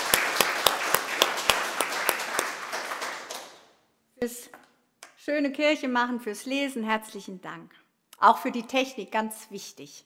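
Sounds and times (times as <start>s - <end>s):
crowd applauding a band: 0.0s - 3.7s
rhythmic sharp evenly spaced claps: 0.0s - 3.8s
speech: 4.2s - 4.6s, 5.2s - 10.0s.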